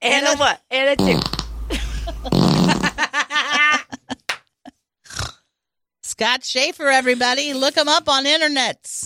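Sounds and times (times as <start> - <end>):
speech: 0.0 - 1.4, 6.2 - 9.0
loud wet fart: 1.0 - 3.0
people laughing: 1.7 - 4.8.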